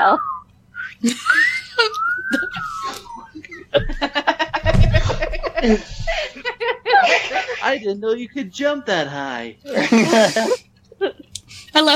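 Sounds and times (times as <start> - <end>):
people giving a swooping whistle: 0.0 - 3.5
speech: 0.1 - 0.3, 0.9 - 2.3, 5.6 - 5.9, 7.7 - 10.6
people laughing: 1.0 - 7.8, 9.7 - 11.9.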